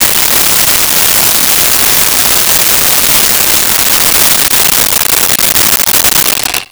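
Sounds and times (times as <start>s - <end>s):
rotary saw: 0.0s - 6.7s.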